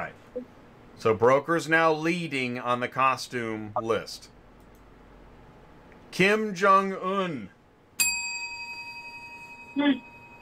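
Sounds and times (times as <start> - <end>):
speech: 0.1 - 4.4, 6.1 - 7.6, 9.8 - 10.0
single bell struck once: 8.0 - 10.4.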